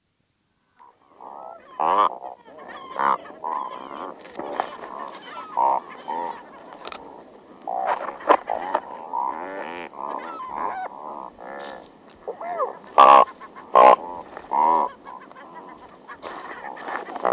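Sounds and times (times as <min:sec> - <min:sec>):
cormorants croaking in a chorus of nasal honking croaks: 0:00.8 - 0:17.3.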